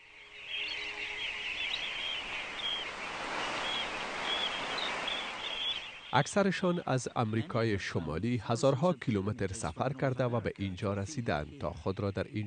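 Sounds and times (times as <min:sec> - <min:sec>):
small birds chirping and calling by tidal pools: 0:00.0 - 0:07.3
steady wash of noise: 0:00.0 - 0:12.4
speech: 0:06.1 - 0:12.4.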